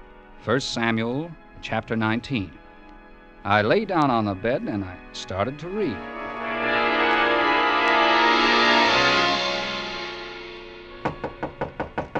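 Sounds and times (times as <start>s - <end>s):
sustained musical drone: 0.0s - 12.1s
speech: 0.4s - 2.6s, 3.4s - 6.2s
bellhop knocking on a hotel room door: 11.0s - 12.1s.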